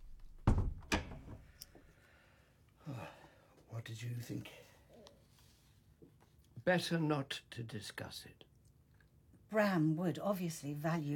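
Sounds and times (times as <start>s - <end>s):
door shutting with a heavy thud: 0.0s - 1.5s
door knocking as it settles: 0.4s - 1.4s
speech: 3.8s - 4.7s, 6.6s - 8.5s, 9.5s - 11.1s.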